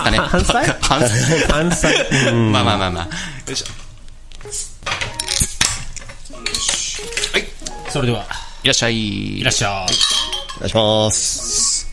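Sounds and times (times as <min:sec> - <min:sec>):
laughter: 0:00.0 - 0:03.2
speech: 0:00.0 - 0:03.8, 0:04.4 - 0:04.7, 0:07.9 - 0:11.8
bright clinks of glass and tableware: 0:05.0 - 0:08.0, 0:09.5 - 0:10.9.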